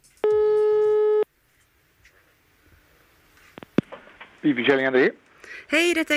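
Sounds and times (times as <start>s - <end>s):
telephone ringing tone: 0.2s - 1.3s
speech: 4.4s - 6.1s.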